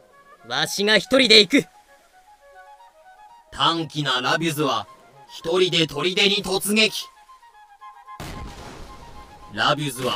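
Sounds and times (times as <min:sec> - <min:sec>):
sustained tonal music: 0:00.0 - 0:10.1
speech: 0:00.4 - 0:01.7, 0:03.6 - 0:07.1, 0:09.5 - 0:10.1
cannon fire from a fort: 0:08.2 - 0:09.3.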